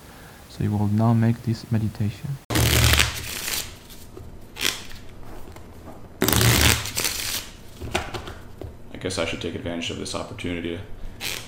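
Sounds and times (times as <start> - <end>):
speech: 0.6 - 2.5, 9.0 - 11.3
deck of playing cards being shuffled: 2.5 - 8.5.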